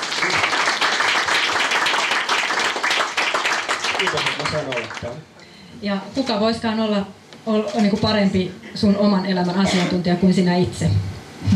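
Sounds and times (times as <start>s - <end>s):
audience applause: 0.0s - 5.2s
speech: 4.0s - 11.5s.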